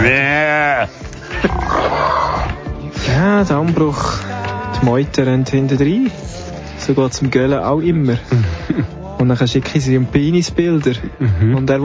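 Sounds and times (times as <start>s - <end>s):
lamb bleating: 0.0s - 2.6s
speech: 3.6s - 4.2s, 4.8s - 11.8s
laughter: 8.1s - 9.0s.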